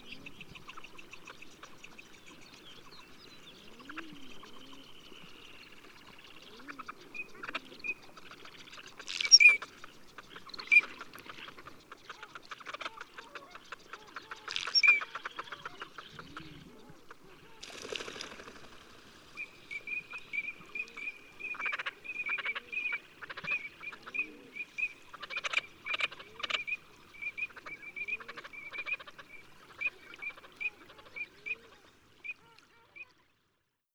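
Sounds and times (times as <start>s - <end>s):
Anas crecca: 3.7s - 4.8s, 6.5s - 17.7s, 20.1s - 24.5s, 25.1s - 33.3s.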